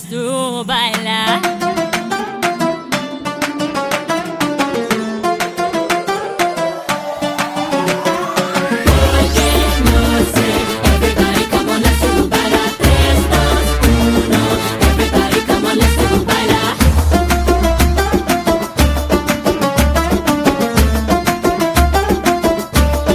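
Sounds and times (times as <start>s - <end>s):
Spanish guitar remix: 0.1s - 23.1s.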